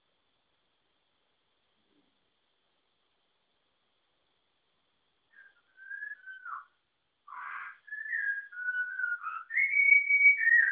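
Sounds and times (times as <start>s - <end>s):
Malabar whistling thrush whistles: 5.3s - 10.7s.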